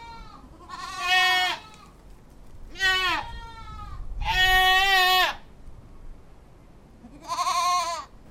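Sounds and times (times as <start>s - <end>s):
goat and her kids bleating: 0.0s - 2.0s, 2.7s - 5.5s, 7.0s - 8.2s.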